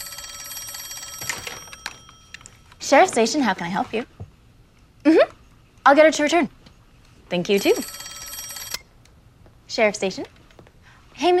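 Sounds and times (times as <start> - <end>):
telephone ringing at a sheriff station: 0.0 - 3.4, 7.4 - 8.9
speech: 2.9 - 4.2, 5.8 - 6.6, 7.3 - 8.0, 9.8 - 10.4, 11.2 - 11.3.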